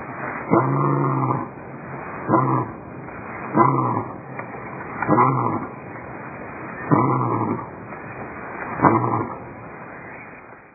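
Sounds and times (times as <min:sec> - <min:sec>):
lion giving deep moaning grunts: 0:00.5 - 0:01.5, 0:02.3 - 0:02.8, 0:03.5 - 0:04.2, 0:05.0 - 0:05.7, 0:06.9 - 0:07.7, 0:08.8 - 0:09.4.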